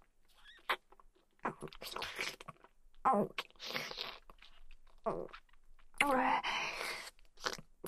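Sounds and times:
chewing a large mouthful of food: 0.6 - 6.0, 7.0 - 7.8.

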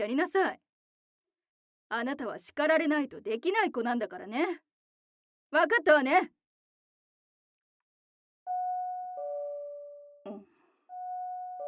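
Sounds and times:
speech: 0.0 - 0.6, 1.9 - 4.7, 5.5 - 6.4
two-tone ding-dong doorbell chime: 8.5 - 10.2, 10.9 - 11.6.

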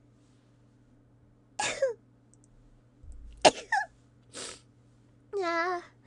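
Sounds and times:
faint low hum: 0.0 - 6.0
person with a cold sneezing: 3.5 - 4.6.

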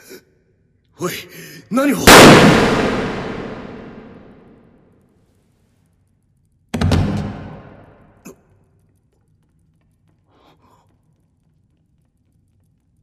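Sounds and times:
speech: 1.0 - 3.2
gunshots: 2.0 - 4.6.

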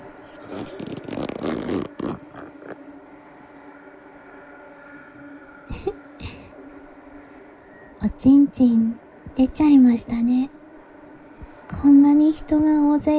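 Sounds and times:
fabric rustling: 0.3 - 2.8
trouser zipper being pulled down: 0.4 - 2.8
speech: 0.5 - 0.9, 8.0 - 10.6, 11.8 - 13.1.

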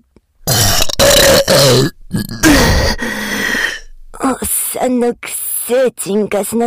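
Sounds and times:
person burping loudly and deeply: 0.4 - 3.9
speech: 1.4 - 2.5, 4.3 - 6.6.

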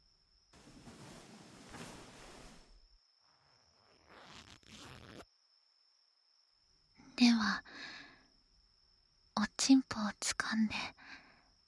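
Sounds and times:
clothing zipper being opened: 0.6 - 2.8, 3.8 - 5.2
speech: 9.7 - 11.0.

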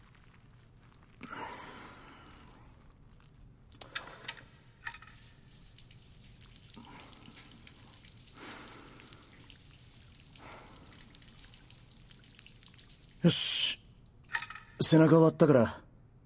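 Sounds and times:
shower water running: 4.8 - 13.8
speech: 13.2 - 13.8, 14.9 - 15.8.

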